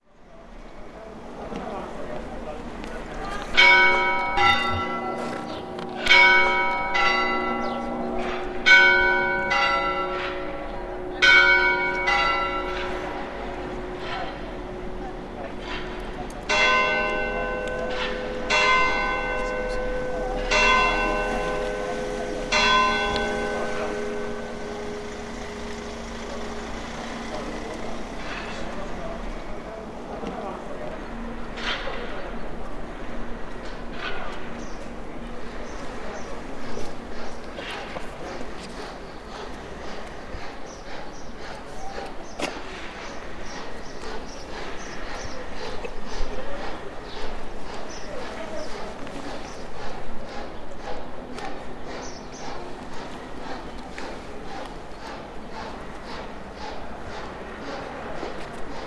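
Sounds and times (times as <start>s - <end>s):
cathedral bells ringing: 1.5s - 38.9s.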